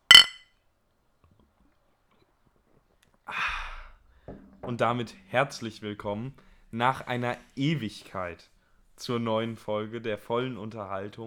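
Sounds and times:
glasses clinking in a toast: 0:00.0 - 0:00.4
speech: 0:04.7 - 0:11.2.

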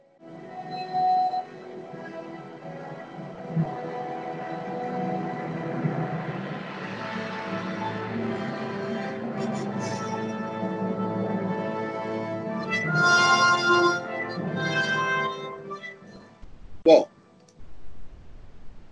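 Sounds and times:
bold orchestral horn theme: 0:03.7 - 0:16.4.

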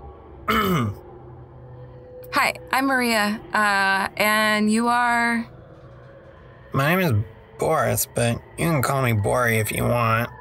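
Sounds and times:
man clearing his throat: 0:00.5 - 0:01.0
speech: 0:00.6 - 0:01.0, 0:02.4 - 0:05.6, 0:06.7 - 0:10.3.

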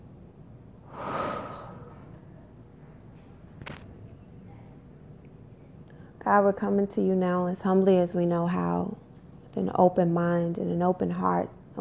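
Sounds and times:
deep breath in and out: 0:00.8 - 0:02.1
speech: 0:06.3 - 0:09.0, 0:09.6 - 0:11.7.

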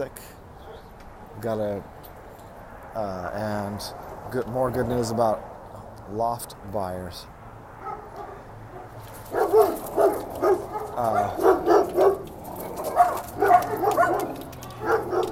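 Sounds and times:
speech: 0:00.0 - 0:00.4, 0:01.4 - 0:02.0, 0:02.9 - 0:05.5, 0:06.1 - 0:07.3, 0:11.0 - 0:11.5
dogs barking: 0:00.6 - 0:01.0, 0:07.8 - 0:15.3.

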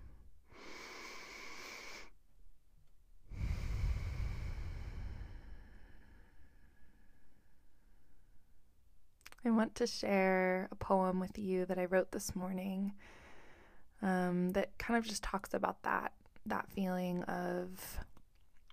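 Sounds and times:
deep breath taken together during a guided pause: 0:00.0 - 0:02.2, 0:03.3 - 0:08.6, 0:13.0 - 0:13.9
speech: 0:09.4 - 0:13.2, 0:14.0 - 0:18.1.

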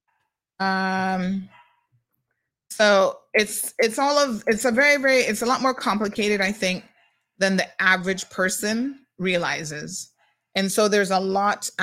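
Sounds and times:
speech: 0:00.6 - 0:01.6, 0:02.8 - 0:11.8
dog barking: 0:01.5 - 0:01.9.

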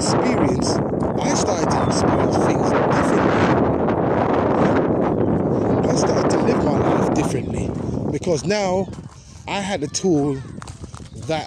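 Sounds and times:
steady wind buffeting a microphone: 0:00.0 - 0:11.4
speech: 0:08.3 - 0:10.5, 0:11.3 - 0:11.4.

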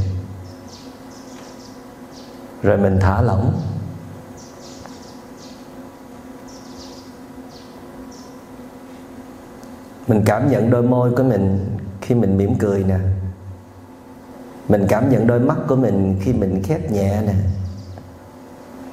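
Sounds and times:
person speaking calmly: 0:00.0 - 0:00.4, 0:02.6 - 0:04.2, 0:10.0 - 0:13.5, 0:14.7 - 0:17.8
bird chirps: 0:00.3 - 0:02.6, 0:03.4 - 0:08.7
speech: 0:02.6 - 0:03.7, 0:10.1 - 0:13.2, 0:14.7 - 0:17.6.

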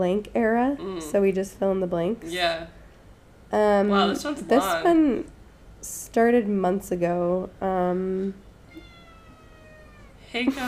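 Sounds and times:
speech: 0:00.0 - 0:02.8, 0:03.5 - 0:08.4, 0:10.3 - 0:10.6
female cat meowing: 0:08.4 - 0:10.3.

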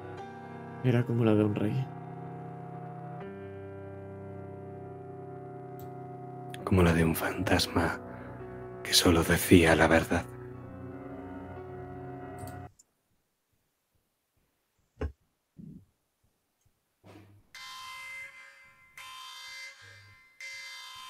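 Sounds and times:
speech: 0:00.8 - 0:02.0, 0:06.7 - 0:08.1, 0:08.9 - 0:10.3
spaceship alarm blaring: 0:17.6 - 0:21.0.

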